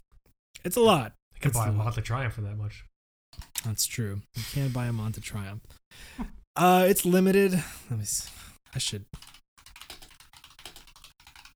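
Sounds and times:
speech: 0.6 - 9.3
typing on a loud computer keyboard: 9.2 - 11.5.

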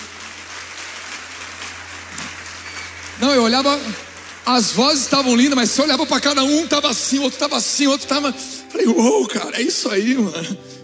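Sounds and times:
audience applauding: 0.0 - 8.3
speech: 3.2 - 10.8.

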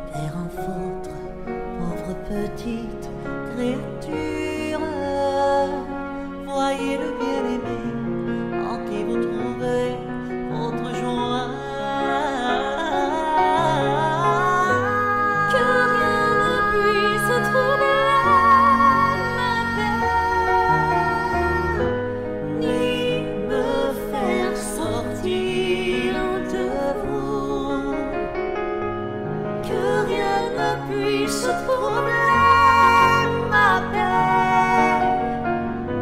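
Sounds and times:
sung hymn setting a prayer to music: 0.0 - 36.0
speech: 2.3 - 4.2.

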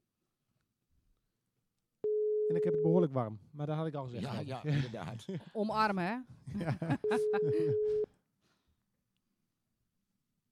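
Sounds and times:
electronic telephone ringback tone: 2.0 - 3.0, 7.0 - 8.1
speech: 2.5 - 8.1
laughter: 4.2 - 5.8, 6.4 - 8.0.

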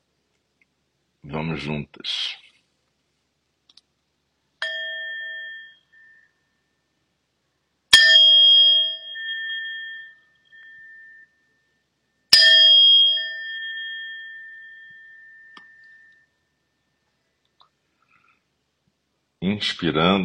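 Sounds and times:
speech: 1.2 - 2.4, 19.5 - 20.2
meditation bell ringing: 4.6 - 7.1, 7.9 - 17.1.

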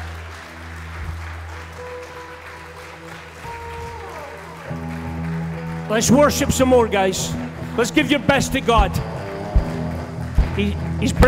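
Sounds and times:
large crowd at a church worship service applauding: 0.0 - 11.2
organ or keyboard tones: 3.4 - 11.2
speech: 5.9 - 9.1, 10.6 - 11.2.

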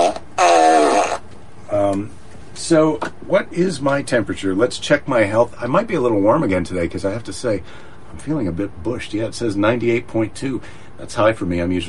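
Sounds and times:
buzzy fart noise from a novelty sound machine: 0.0 - 1.3
speech: 2.0 - 11.8.

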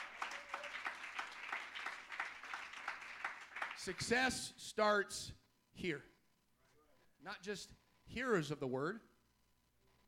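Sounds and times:
crowd clapping hands in a steady rhythmic beat: 0.0 - 4.3
speech: 3.8 - 6.1, 7.2 - 9.1.

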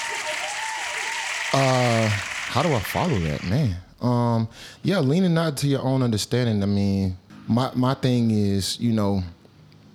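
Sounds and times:
crowd applause: 0.0 - 3.5
speech: 1.5 - 9.4.

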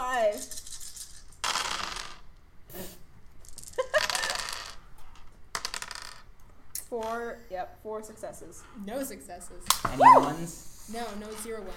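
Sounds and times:
dice rolled across a hard tabletop: 0.3 - 2.3, 3.4 - 6.4
speech: 6.9 - 11.7.

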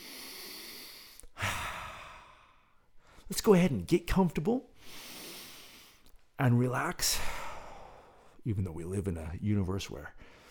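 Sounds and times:
slow deep breath: 0.0 - 3.3, 4.8 - 6.1, 7.2 - 8.4, 10.2 - 10.4
speech: 3.3 - 5.0, 6.4 - 7.3, 8.4 - 10.3.

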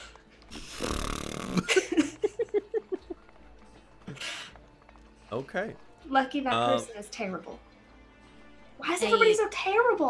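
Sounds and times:
voice imitating a fart: 0.5 - 1.7
laughter: 1.5 - 3.4
speech: 5.3 - 7.7, 8.8 - 10.0.

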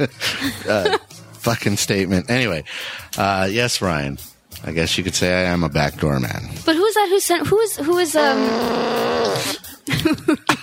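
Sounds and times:
speech: 0.0 - 10.5
loud drawn-out buzzing fart: 8.3 - 9.6.

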